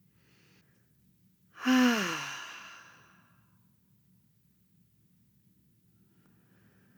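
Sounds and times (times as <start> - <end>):
person sighing through a relaxed open mouth during a calming exercise: 1.6 - 3.2.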